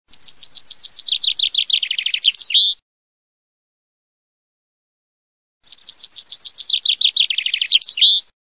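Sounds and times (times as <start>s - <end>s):
chaffinch song: 0.1s - 2.8s, 5.6s - 8.4s.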